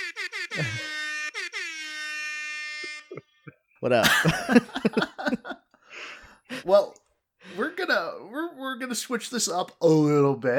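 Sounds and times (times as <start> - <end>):
air horn from a phone app: 0.0 - 3.2
laughter: 3.1 - 5.6
speech: 3.8 - 5.0, 8.9 - 10.5.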